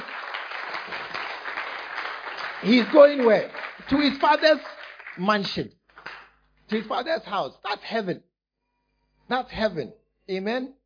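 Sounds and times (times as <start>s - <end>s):
crowd applause at a church service: 0.0s - 5.4s
speech: 2.6s - 5.8s, 6.7s - 8.3s, 9.3s - 10.8s.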